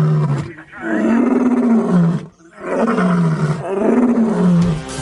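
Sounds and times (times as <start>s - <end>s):
lion roaring: 0.0s - 4.9s.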